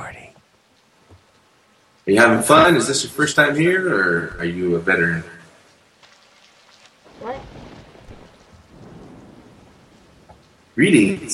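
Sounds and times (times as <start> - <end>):
heavy rain: 0.0 - 11.3
speech: 2.1 - 5.4, 10.8 - 11.3
deep low rumble: 7.1 - 11.3.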